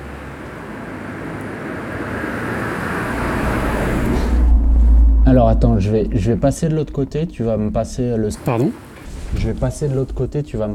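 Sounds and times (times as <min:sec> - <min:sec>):
car passing by: 0:00.0 - 0:07.0
car road noise and low rumble: 0:00.0 - 0:08.2
speech: 0:05.3 - 0:10.7.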